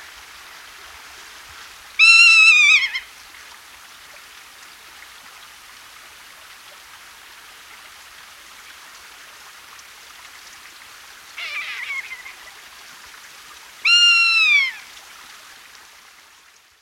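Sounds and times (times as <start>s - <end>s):
rough-legged buzzard giving a descending mewing cry: 2.0s - 3.0s, 11.4s - 12.5s, 13.8s - 14.8s.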